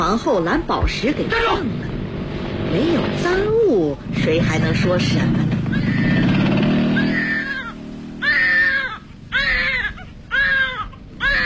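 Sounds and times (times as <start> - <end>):
speech: 0.0 - 1.9, 2.7 - 5.9
low rumbling noise: 0.0 - 11.4
infant on a street garden bench crying in loud rhythmic wails: 5.7 - 11.4.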